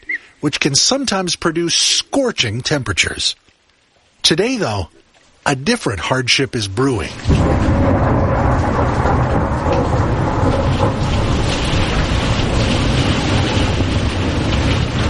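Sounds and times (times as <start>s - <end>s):
speech: 0.4s - 3.5s, 4.2s - 8.0s
heavy rain pounding down in a thunderstorm: 0.4s - 15.0s
deep thunder rumble: 7.0s - 15.0s.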